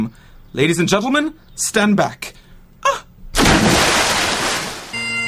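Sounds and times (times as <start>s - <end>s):
speech: 0.0s - 3.0s
man diving headfirst into a backyard river: 3.4s - 5.1s.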